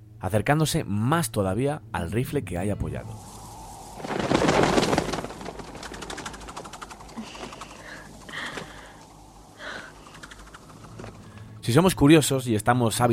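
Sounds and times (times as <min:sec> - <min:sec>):
speech: 0:00.2 - 0:03.3, 0:11.7 - 0:13.1
partridges bursting out of brush with wings rushing: 0:03.0 - 0:12.3
faint bird calls: 0:06.0 - 0:11.6.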